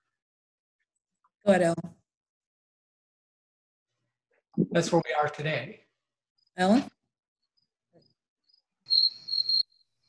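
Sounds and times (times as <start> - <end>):
speech: 1.4 - 1.9, 4.6 - 5.8, 6.6 - 7.0
cricket trilling: 7.6 - 10.0.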